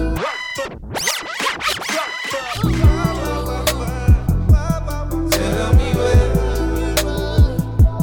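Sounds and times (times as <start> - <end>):
record scratching in a DJ drop: 0.0 - 4.3
thumping beat with deep sustained bass and kick drums: 2.6 - 8.0.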